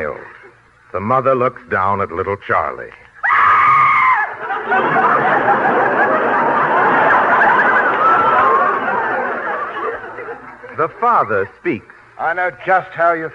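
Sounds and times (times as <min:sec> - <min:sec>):
speech: 0:00.0 - 0:03.0, 0:10.8 - 0:13.3
woman's loud high-pitched scream: 0:03.2 - 0:04.4
sustained audience laughter: 0:04.3 - 0:11.6
crowd babble: 0:04.4 - 0:11.6.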